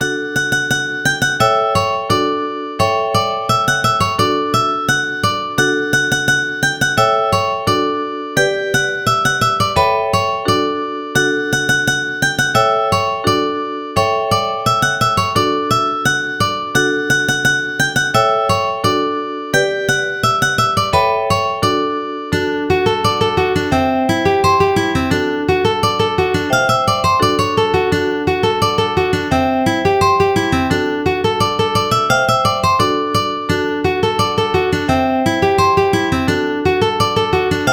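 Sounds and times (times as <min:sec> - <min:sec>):
ukulele playing: 0:00.0 - 0:37.7.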